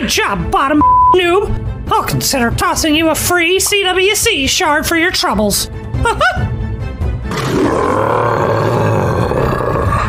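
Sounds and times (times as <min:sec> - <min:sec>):
speech: 0:00.1 - 0:06.5, 0:07.5 - 0:08.3
deep drawn-out growling roar: 0:07.2 - 0:10.0.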